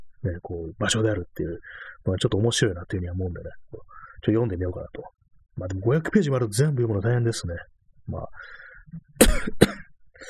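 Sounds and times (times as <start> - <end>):
speech: 0.2 - 10.2
person coughing: 9.2 - 10.2.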